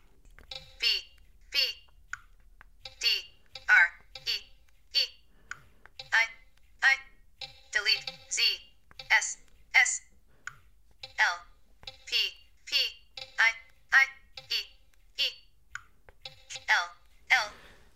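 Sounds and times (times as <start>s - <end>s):
synthetic screen-reader voice announcing letters typed on an on-screen keyboard: 0.5s - 2.0s, 2.9s - 5.2s, 6.0s - 10.1s, 11.0s - 15.5s, 16.3s - 17.8s.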